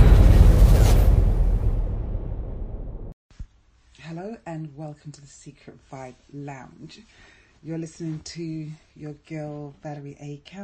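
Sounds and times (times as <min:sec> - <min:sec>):
explosion sound effect with bass-heavy boom and deep rumble: 0:00.0 - 0:03.2
speech: 0:04.2 - 0:10.6.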